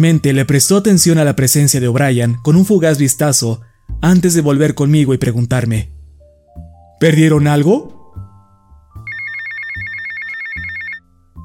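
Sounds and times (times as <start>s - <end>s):
speech: 0.0s - 6.0s, 7.0s - 8.0s
low musical backdrop: 0.0s - 11.4s
mobile phone ringing with electronic melody: 9.0s - 11.0s.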